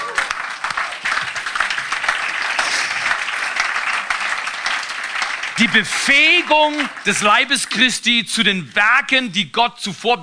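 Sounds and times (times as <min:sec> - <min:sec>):
crowd applauding: 0:00.0 - 0:08.2
speech: 0:05.6 - 0:10.2.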